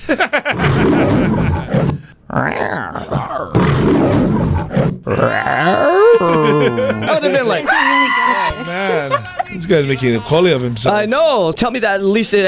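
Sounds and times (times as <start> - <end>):
laughter: 0.0 - 2.1, 5.8 - 10.5
man imitating a lion's roar with growling vocal bursts: 0.7 - 4.4, 5.1 - 9.2
speech: 9.6 - 12.4.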